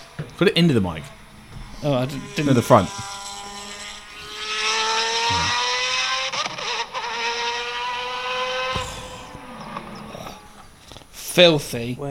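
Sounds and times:
car engine revving: 0:00.0 - 0:11.1
speech: 0:00.4 - 0:01.2, 0:01.8 - 0:03.1, 0:11.4 - 0:12.1.

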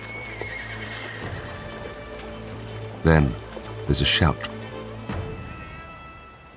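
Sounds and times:
horse neighing: 0:00.0 - 0:01.8
horses galloping: 0:00.0 - 0:04.8
speech: 0:03.0 - 0:04.5.

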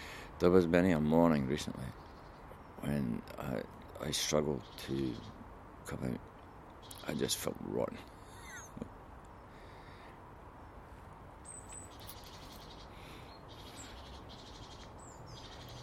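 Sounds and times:
birds chirping in a garden: 0:00.0 - 0:15.8
quiet outdoor hiss: 0:00.0 - 0:15.8
speech: 0:00.4 - 0:02.0, 0:02.8 - 0:06.3, 0:06.9 - 0:08.1.

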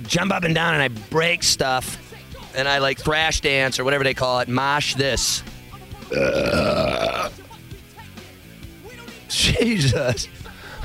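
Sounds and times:
speech: 0:00.1 - 0:05.5, 0:06.1 - 0:07.4, 0:09.3 - 0:10.4
long loud burp: 0:06.1 - 0:07.4.

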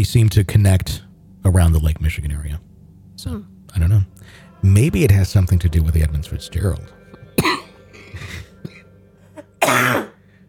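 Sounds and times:
speech: 0:00.0 - 0:08.2
raspy coughing: 0:07.4 - 0:08.8, 0:09.4 - 0:10.2.

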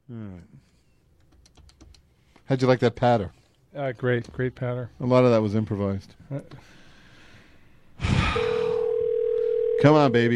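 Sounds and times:
speech: 0:00.1 - 0:00.8, 0:02.5 - 0:06.8, 0:09.8 - 0:10.3
telephone steady electronic tone: 0:08.4 - 0:10.3.

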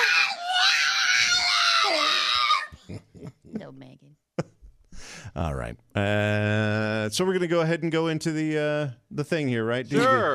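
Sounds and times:
pig screaming in a shrill wavering squeal: 0:00.0 - 0:02.7
speech: 0:05.4 - 0:10.3.

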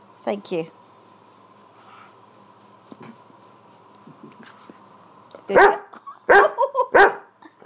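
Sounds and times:
speech: 0:00.2 - 0:00.8, 0:05.5 - 0:05.8
guide dog barking: 0:05.5 - 0:07.3.

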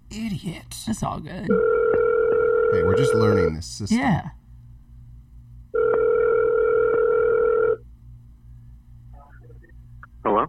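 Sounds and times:
low hum: 0:00.0 - 0:10.4
speech: 0:00.1 - 0:01.9, 0:02.7 - 0:04.4
telephone dial tone while a call is being placed: 0:01.5 - 0:03.2, 0:05.8 - 0:07.8.

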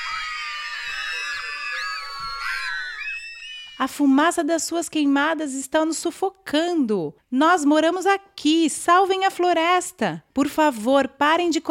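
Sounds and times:
large crowd shouting and screaming: 0:00.0 - 0:03.8
speech: 0:03.8 - 0:11.6.

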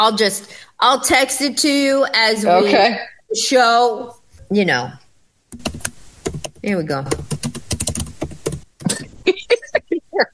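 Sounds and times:
speech: 0:00.0 - 0:05.8, 0:06.6 - 0:07.3
rapid emphatic keyboard typing: 0:05.5 - 0:09.2.

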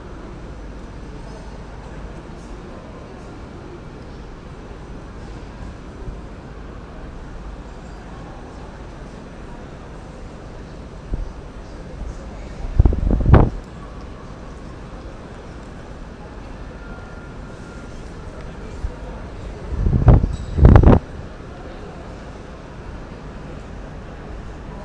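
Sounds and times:
wind noise: 0:12.6 - 0:13.6, 0:19.5 - 0:21.3.

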